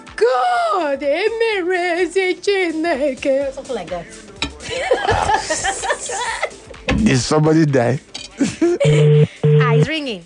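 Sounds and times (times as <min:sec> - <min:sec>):
speech: 0:00.4 - 0:10.2
laughter: 0:04.6 - 0:06.6, 0:08.4 - 0:09.2
telephone ringback tone: 0:08.8 - 0:09.9.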